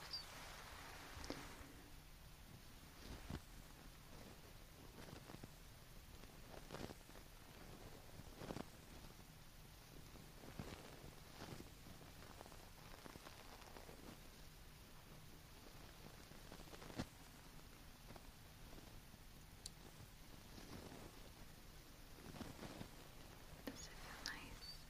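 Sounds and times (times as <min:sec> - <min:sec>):
faint low hum: 0:00.0 - 0:24.8
steady even hiss: 0:00.0 - 0:24.8
tissue wiping and rustling: 0:03.0 - 0:09.2, 0:10.1 - 0:14.4, 0:15.6 - 0:19.0, 0:19.8 - 0:24.8.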